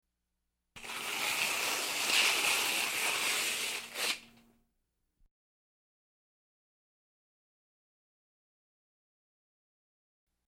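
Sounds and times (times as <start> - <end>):
paper tearing: 0.8 - 4.4.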